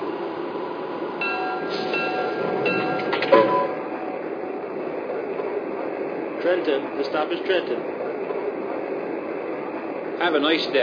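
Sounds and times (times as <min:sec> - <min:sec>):
train rumbling: 0:00.0 - 0:10.8
train clunk: 0:01.2 - 0:05.6
speech: 0:06.5 - 0:08.0, 0:10.2 - 0:10.8.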